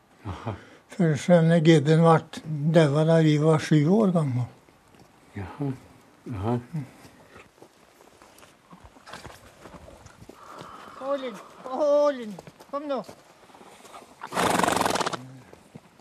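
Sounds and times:
speech: 0.2s - 4.6s, 5.4s - 7.0s, 11.2s - 13.2s
horse hooves clopping: 7.0s - 15.9s
horse on a farm neighing: 14.2s - 15.4s
sharp burst of noise: 14.3s - 15.2s.

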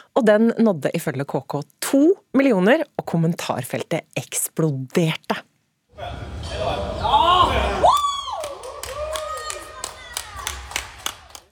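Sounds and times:
speech: 0.2s - 6.9s
personal trainer whooping and cheering: 7.0s - 10.8s
sharp claps and taps: 8.4s - 11.5s.

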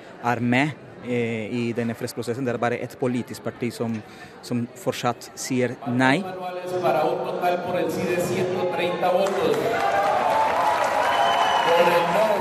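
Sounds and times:
speech: 0.2s - 10.2s, 11.7s - 12.4s
large indoor crowd cheering in a national assembly: 9.0s - 12.4s.

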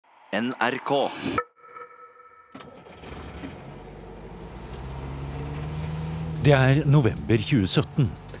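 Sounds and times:
speech: 0.3s - 1.5s, 6.4s - 8.2s
small bus engine humming and rumbling, heard from inside the cabin: 2.6s - 8.3s.

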